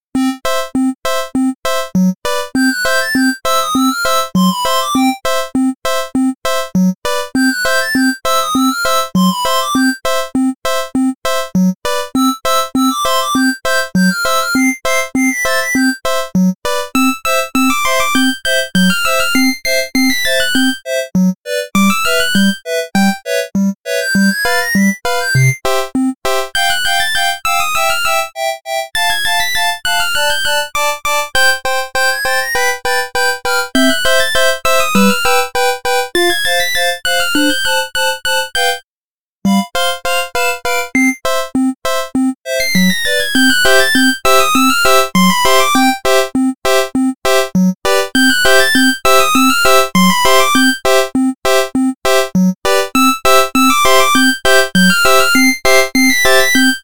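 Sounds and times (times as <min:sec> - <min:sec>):
8-bit xylophone melody: 0:00.2 - 0:38.8, 0:39.5 - 0:56.8.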